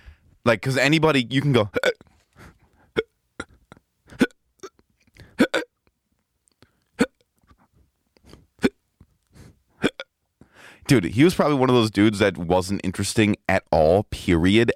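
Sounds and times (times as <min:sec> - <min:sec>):
speech: 0:00.4 - 0:02.0, 0:10.9 - 0:13.4, 0:14.3 - 0:14.7
voice imitating hiccups: 0:01.7 - 0:02.1, 0:02.9 - 0:05.8, 0:07.0 - 0:07.3, 0:08.6 - 0:08.8, 0:09.8 - 0:10.2.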